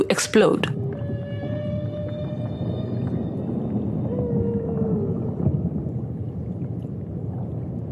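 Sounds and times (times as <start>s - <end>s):
whale calls underwater: 0.0s - 6.5s
underwater low rumbling and crackling: 0.0s - 7.8s
speech: 0.2s - 0.8s.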